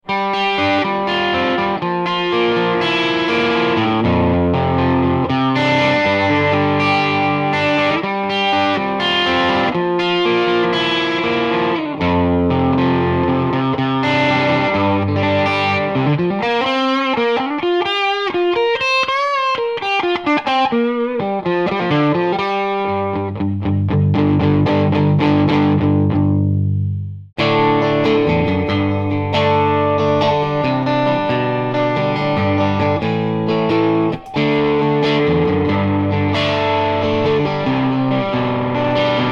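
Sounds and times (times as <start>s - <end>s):
electric guitar on mid and bridge pickups, clean to medium overdrive: 0.0s - 39.2s.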